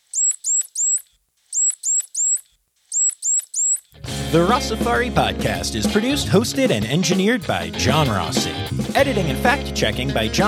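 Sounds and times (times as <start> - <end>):
dolphin signature whistle: 0.0 - 3.9
speech: 4.3 - 10.4.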